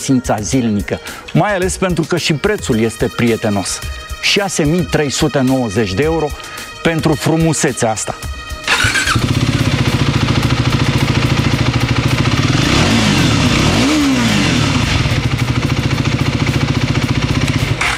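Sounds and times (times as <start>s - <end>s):
speech: 0.0s - 9.3s
motorcycle engine revving and idling: 8.6s - 17.9s.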